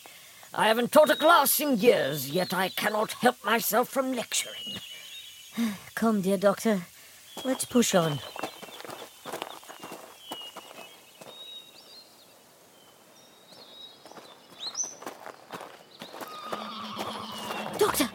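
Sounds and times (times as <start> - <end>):
faint birdsong: 0.0 - 18.1
speech: 0.5 - 4.9, 5.6 - 8.5
scuffling steps: 7.4 - 11.9, 13.5 - 18.1
horse hooves clip-clopping: 7.4 - 12.0, 13.5 - 18.1
horse neighing: 16.2 - 18.0.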